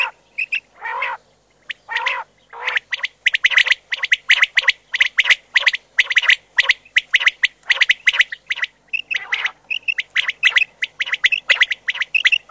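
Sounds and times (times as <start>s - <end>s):
common quail giving harsh bursts and scratchy notes: 0.0s - 12.5s.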